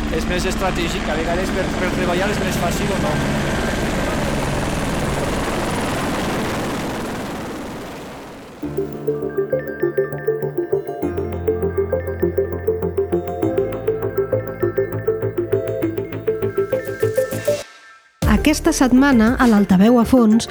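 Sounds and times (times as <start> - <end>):
helicopter flying: 0.0 - 17.4
speech: 0.1 - 3.9, 18.5 - 20.4.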